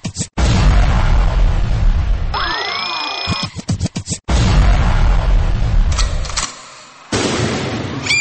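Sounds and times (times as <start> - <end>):
loud explosion sound effects with roaring rumble: 0.4 - 2.4, 4.3 - 6.2, 7.1 - 8.1.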